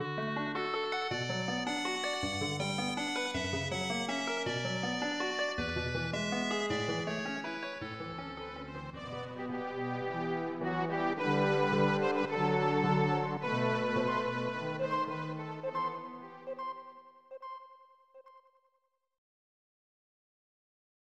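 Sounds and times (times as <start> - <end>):
SNES video game music: 0.0 - 18.4.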